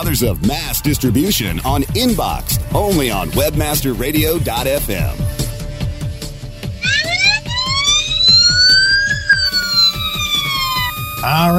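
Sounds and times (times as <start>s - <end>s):
speech: 0.0s - 5.4s, 11.2s - 11.5s
steady thumping rhythmic beat: 0.0s - 11.5s
ambulance siren wailing: 6.8s - 11.5s.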